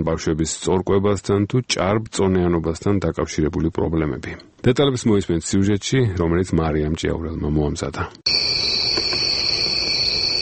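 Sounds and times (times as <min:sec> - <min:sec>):
speech: 0:00.0 - 0:09.3
crickets chirping in a continuous high-pitched trill: 0:08.3 - 0:10.4.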